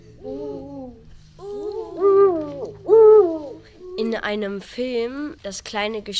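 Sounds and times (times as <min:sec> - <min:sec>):
Eurasian eagle-owl hooting: 0:00.2 - 0:04.0
speech: 0:04.1 - 0:06.1.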